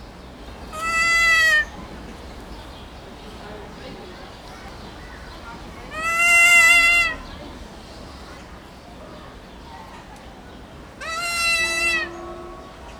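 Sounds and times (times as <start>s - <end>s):
Nestor notabilis kea: 0.6s - 1.8s, 5.9s - 7.4s, 11.0s - 12.3s.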